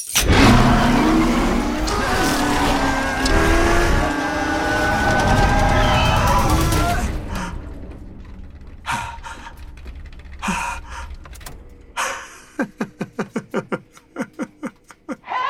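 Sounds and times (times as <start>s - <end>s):
car engine starting and revving: 0.1s - 11.9s
laughter: 12.0s - 15.3s.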